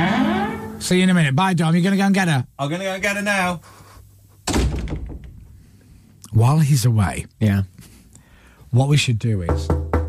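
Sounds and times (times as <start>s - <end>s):
speech: 0.9s - 3.8s, 6.4s - 7.9s, 8.7s - 9.8s
door swinging shut with a solid thunk: 4.5s - 5.4s.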